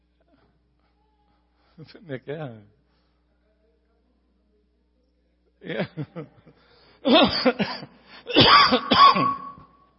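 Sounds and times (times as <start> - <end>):
speech: 1.8 - 2.8, 5.6 - 9.4
man clearing throat: 7.0 - 9.6
man coughing: 7.0 - 9.6.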